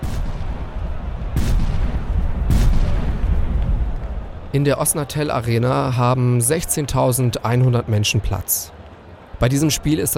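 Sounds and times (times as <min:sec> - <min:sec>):
firecrackers banging at a crowded outdoor football fan march: 0:00.0 - 0:04.5
rumbling din: 0:00.0 - 0:06.6
constant roar of crowd noise: 0:00.0 - 0:10.1
speech: 0:04.6 - 0:08.8, 0:09.4 - 0:10.1.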